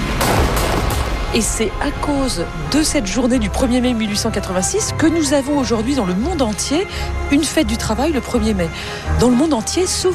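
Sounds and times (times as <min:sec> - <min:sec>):
gunfire bursts as soldiers open fire: 0:00.2 - 0:01.4
speech: 0:01.3 - 0:10.1.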